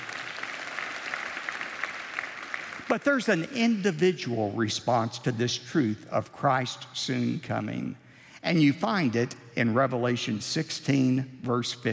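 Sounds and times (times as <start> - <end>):
audience applause at a religious talk: 0.0 - 3.0
speech: 2.9 - 11.9.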